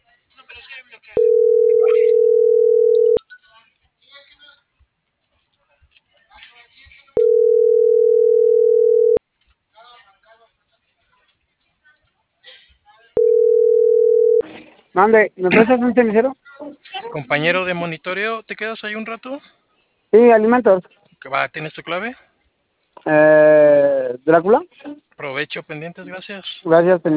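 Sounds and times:
telephone ringback tone after dialing a number: 1.2 - 3.2, 7.2 - 9.2, 13.2 - 14.4
speech: 15.0 - 16.4, 17.1 - 22.3, 23.0 - 27.1.

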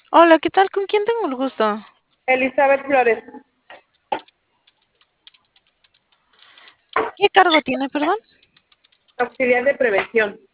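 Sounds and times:
speech: 0.2 - 3.5, 7.2 - 8.3, 9.2 - 10.5
typing on a keyboard: 3.8 - 9.7.

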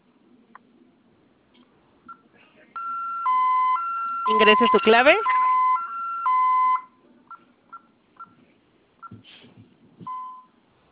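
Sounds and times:
faint murmur: 0.0 - 2.9, 6.8 - 10.2
security alarm panel steady electronic tone: 2.8 - 6.9
speech: 4.3 - 5.4.

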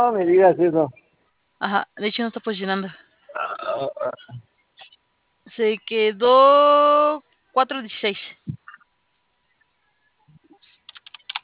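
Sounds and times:
speech: 0.0 - 1.0, 1.6 - 3.0, 3.7 - 4.5, 5.6 - 8.6
computer keyboard typing: 10.6 - 11.4.

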